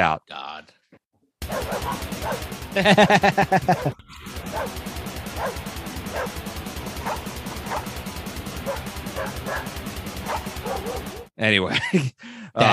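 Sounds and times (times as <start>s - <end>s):
speech: 0.0s - 6.5s, 10.6s - 12.7s
dog barks as vocals: 1.4s - 2.4s, 3.7s - 4.8s, 5.4s - 6.4s, 7.0s - 7.9s, 8.6s - 11.3s
loud distorted grindcore music: 1.4s - 11.3s
laughter: 2.6s - 4.0s, 11.6s - 12.7s.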